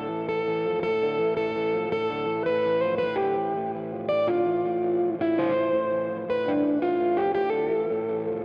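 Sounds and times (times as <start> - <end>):
black Mexican Stratocaster electric guitar with chorus, echo and slight distortion: 0.0 - 8.4.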